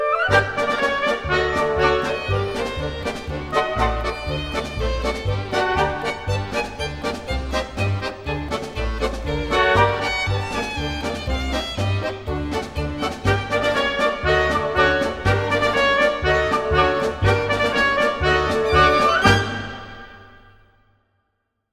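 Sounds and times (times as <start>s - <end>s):
rhythmic background music for an animated video: 0.3s - 20.0s.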